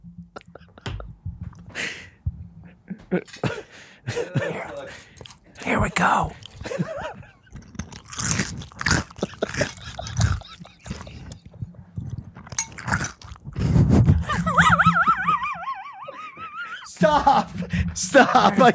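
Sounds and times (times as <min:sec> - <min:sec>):
laughter: 0:02.9 - 0:05.0, 0:06.6 - 0:07.7, 0:09.2 - 0:11.5, 0:14.2 - 0:18.7
speech: 0:03.1 - 0:03.6, 0:05.7 - 0:06.8, 0:17.1 - 0:18.7
person chewing crunchy cereal: 0:04.8 - 0:14.0.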